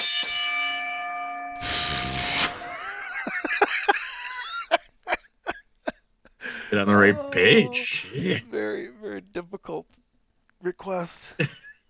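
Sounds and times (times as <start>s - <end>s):
bell strike ringing: 0.0s - 1.7s
laughter: 2.6s - 5.6s, 6.4s - 8.6s, 11.4s - 11.7s
speech: 6.8s - 10.0s, 10.6s - 11.7s.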